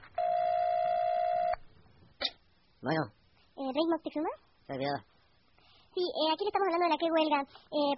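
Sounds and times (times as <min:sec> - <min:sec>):
telephone ringback tone: 0:00.2 - 0:01.6
speech: 0:03.9 - 0:05.1, 0:05.9 - 0:07.9.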